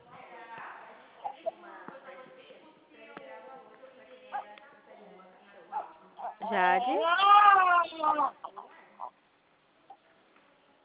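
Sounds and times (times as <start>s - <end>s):
small baby crying softly: 6.2s - 9.1s
speech: 6.5s - 7.4s.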